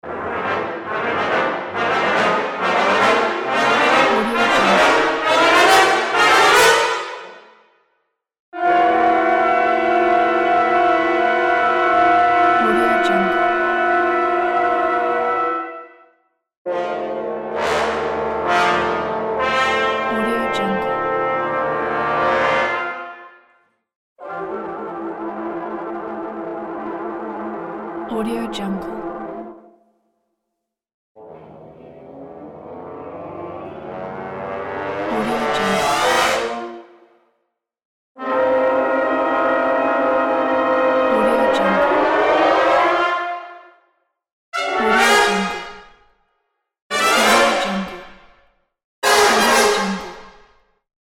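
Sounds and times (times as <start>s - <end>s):
cinematic horror brass sound: 0.0s - 7.8s, 8.6s - 29.8s, 31.2s - 37.4s, 38.2s - 43.9s, 44.6s - 46.2s, 46.9s - 50.5s.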